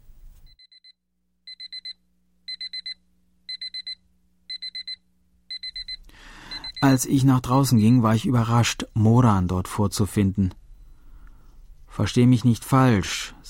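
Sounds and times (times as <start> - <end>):
digital alarm clock beeping: 0.5 - 9.3
soft hum: 1.5 - 12.2
speech: 6.8 - 10.6, 12.0 - 13.4.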